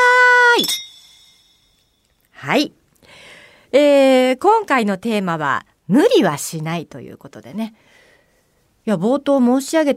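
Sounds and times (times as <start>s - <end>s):
two glasses clinking in a toast: 0.6s - 2.1s
speech: 2.6s - 2.8s, 3.7s - 7.9s, 8.8s - 9.9s.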